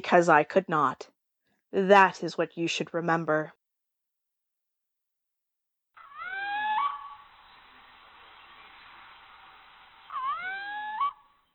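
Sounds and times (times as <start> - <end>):
speech: 0.0 - 1.1, 1.7 - 3.6
owls calling in a wood: 6.0 - 11.5
quiet hiss: 6.0 - 11.5.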